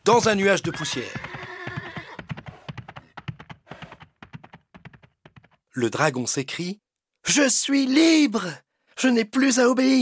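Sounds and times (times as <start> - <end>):
hooves of ridden horse clopping: 0.0 - 5.6
speech: 0.1 - 1.3, 5.8 - 10.0
horse whinnying: 0.6 - 3.0.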